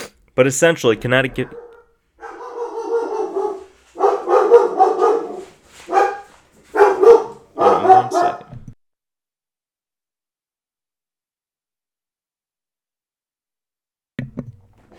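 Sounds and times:
speech: 0.4s - 1.6s
dog barking: 1.2s - 8.5s.

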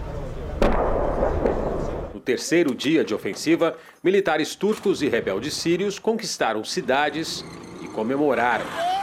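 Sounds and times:
steady low rumble: 0.0s - 2.2s
war tanks firing cannon blasts: 0.6s - 2.2s
speech: 2.2s - 8.9s.

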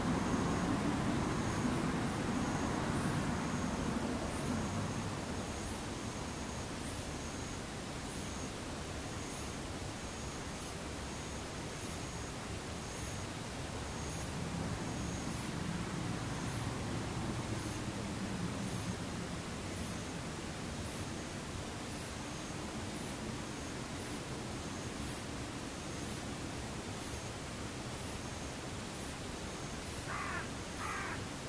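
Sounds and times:
constant hiss: 0.0s - 31.4s
insects buzzing in the daytime: 0.0s - 31.4s.

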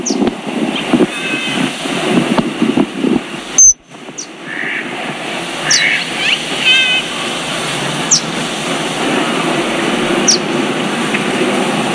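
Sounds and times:
birds chirping at a lagoon: 0.0s - 1.8s, 3.5s - 11.4s
wind-like rush at a lagoon: 0.0s - 11.9s
sharp high peeps: 3.6s - 3.8s.

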